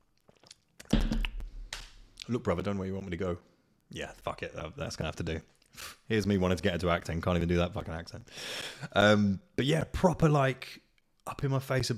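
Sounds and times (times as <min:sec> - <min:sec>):
person sipping coffee: 0:00.0 - 0:01.5
wet slurp and swallow of coffee: 0:00.2 - 0:01.4
speech: 0:02.3 - 0:11.9.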